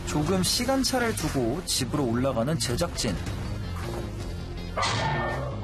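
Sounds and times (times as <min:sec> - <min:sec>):
speech: 0:00.1 - 0:03.4
dog barking: 0:04.8 - 0:05.5.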